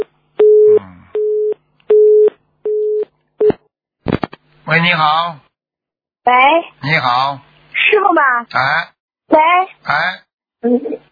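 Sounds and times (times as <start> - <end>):
telephone busy signal after call drops: 0.0 - 3.6
speech: 4.7 - 5.5, 6.3 - 11.0.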